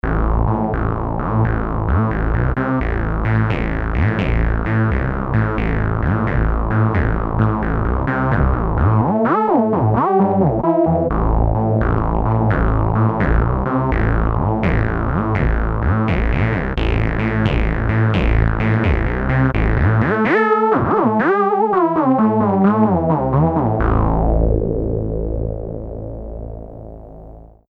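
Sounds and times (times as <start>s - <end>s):
nu saw bass synth: 0.0s - 27.6s.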